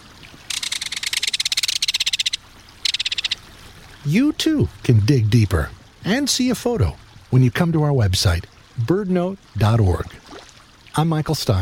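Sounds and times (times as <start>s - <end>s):
Belted Kingfisher rapid-fire rattle call: 0.5s - 3.4s
speech: 4.0s - 10.2s, 11.0s - 11.6s.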